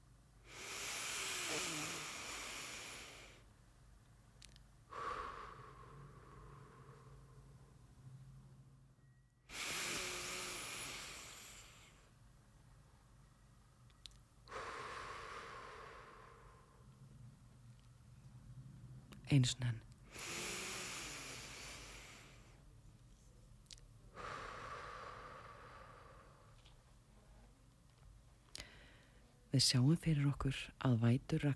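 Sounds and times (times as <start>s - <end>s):
deep slow breathing during a guided meditation: 0.0s - 3.5s, 4.8s - 12.3s, 14.4s - 17.4s, 20.0s - 22.7s, 24.1s - 27.0s, 28.5s - 29.4s
faint low hum: 1.5s - 31.5s
speech: 19.3s - 19.9s, 29.6s - 31.5s.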